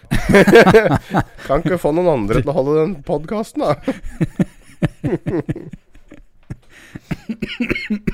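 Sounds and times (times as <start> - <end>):
laughter: 0.0 - 2.4, 3.6 - 8.1
speech: 0.3 - 5.8, 6.9 - 8.1
person coughing: 7.1 - 8.1.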